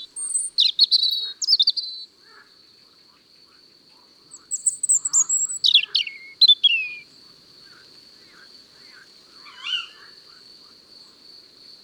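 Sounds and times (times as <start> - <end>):
European robin song: 0.0 - 2.0, 4.3 - 7.0.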